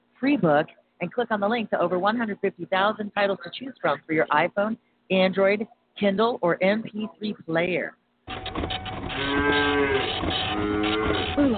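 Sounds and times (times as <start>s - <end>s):
speech: 0.2s - 8.0s, 8.6s - 11.5s
cow mooing: 9.0s - 11.5s.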